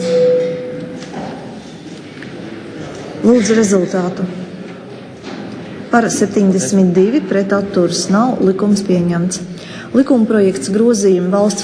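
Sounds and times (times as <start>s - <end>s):
parliament bell rung before a vote: 0.0s - 1.2s
faint noise: 0.0s - 11.6s
speech: 3.2s - 4.4s, 5.9s - 11.6s.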